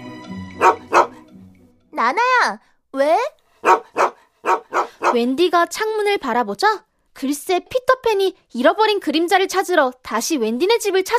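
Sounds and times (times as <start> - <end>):
dog barking: 0.6 - 1.2, 3.6 - 5.2
speech: 2.0 - 3.3, 5.2 - 11.1.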